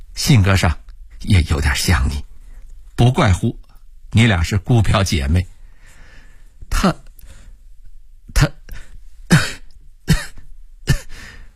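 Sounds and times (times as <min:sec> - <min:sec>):
speech: 0:00.3 - 0:02.3, 0:03.0 - 0:05.5, 0:06.7 - 0:07.0
light coughs: 0:09.3 - 0:11.2.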